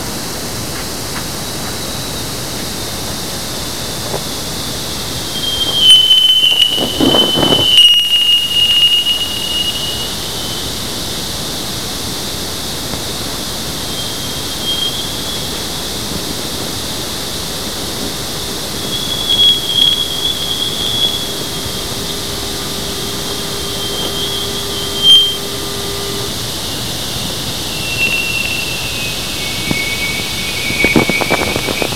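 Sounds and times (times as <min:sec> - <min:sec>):
Jupiter outer magnetosphere sonification: 0:04.8 - 0:11.4, 0:13.6 - 0:31.9.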